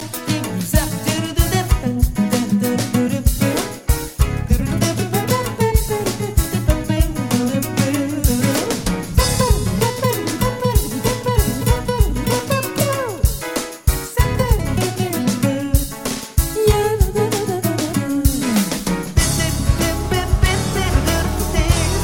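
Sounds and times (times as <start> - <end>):
solo guitar: 0.0 - 15.9, 16.6 - 22.0.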